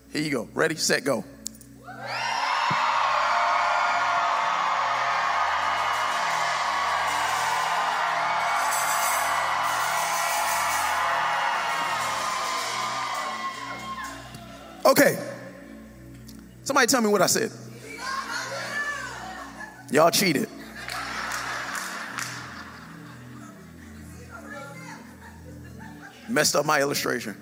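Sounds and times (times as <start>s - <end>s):
speech: 0.1s - 2.8s, 14.9s - 15.2s, 16.8s - 17.7s, 19.9s - 20.5s, 26.4s - 27.4s
large crowd screaming and yelling: 1.8s - 14.9s
laughter: 18.0s - 26.7s.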